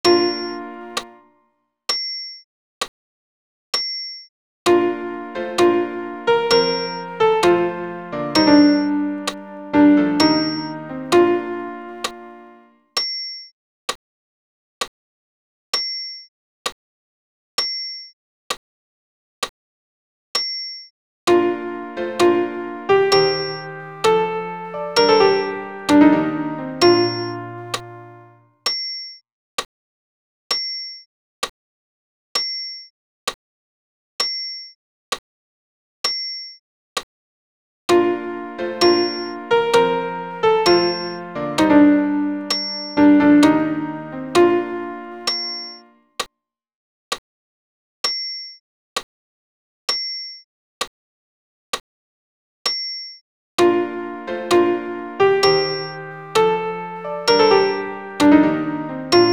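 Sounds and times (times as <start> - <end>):
alternative piano chord: 0.0 - 1.2, 4.7 - 12.7, 21.3 - 28.4, 37.9 - 45.9, 53.6 - 59.3.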